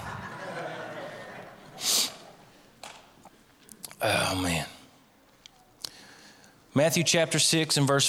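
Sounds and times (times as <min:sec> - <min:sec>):
laughter: 0:00.0 - 0:02.5
person sniffling after crying: 0:01.8 - 0:02.4
speech: 0:04.0 - 0:04.8, 0:06.8 - 0:08.0.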